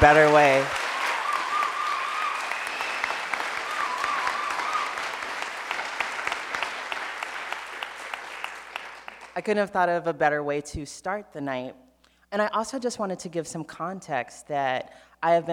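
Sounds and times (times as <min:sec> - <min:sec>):
speech: 0:00.0 - 0:00.8, 0:09.4 - 0:15.5
audience applause: 0:00.0 - 0:09.4.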